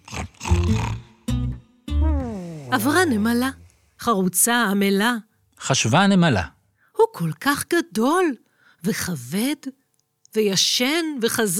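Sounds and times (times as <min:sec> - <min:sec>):
big cat roaring, likely a tiger: 0:02.0 - 0:03.8
speech: 0:02.7 - 0:11.5.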